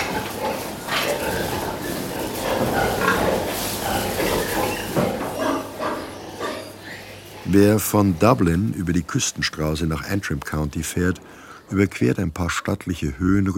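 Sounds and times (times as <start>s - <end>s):
pigs squealing: 0.0s - 8.8s
pigs grunting and snorting in their stables: 0.0s - 11.8s
speech: 7.5s - 13.5s.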